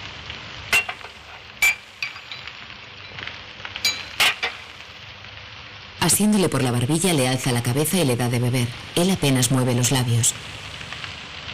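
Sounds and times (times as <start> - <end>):
soft hiss: 0.8 - 11.5
spoon clinking against a crystal glass of water: 3.8 - 4.1
speech: 6.0 - 10.7.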